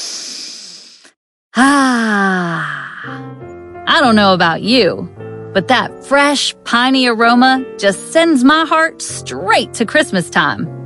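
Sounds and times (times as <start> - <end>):
deep breath drawn in through rolled-down car windows: 0.0 - 3.4
long voiced sigh: 0.0 - 3.4
speech: 1.6 - 2.4, 3.9 - 10.8.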